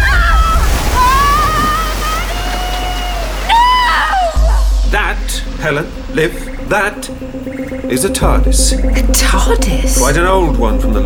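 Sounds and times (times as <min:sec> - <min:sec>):
flooding river that has burst its banks roaring: 0:00.0 - 0:08.2
speech: 0:05.6 - 0:11.0.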